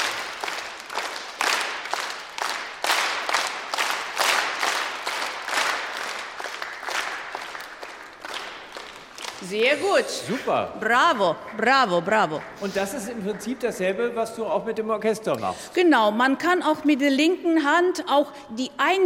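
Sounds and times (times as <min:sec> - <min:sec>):
audience clapping together in a steady triple-meter rhythm: 0:00.0 - 0:14.6
speech: 0:09.4 - 0:19.0.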